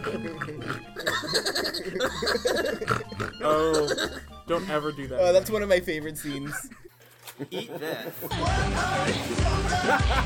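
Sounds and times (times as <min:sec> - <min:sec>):
person imitating a pig eating: 0:00.0 - 0:01.5, 0:02.1 - 0:04.3
laughter: 0:00.0 - 0:04.2, 0:06.0 - 0:08.4, 0:09.6 - 0:10.2
speech: 0:03.4 - 0:06.8, 0:07.4 - 0:10.2.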